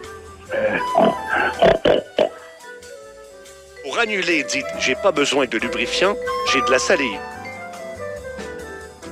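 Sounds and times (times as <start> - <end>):
speech: 0.5 - 1.7, 4.0 - 7.4
pig oinking and grunting: 0.5 - 2.4.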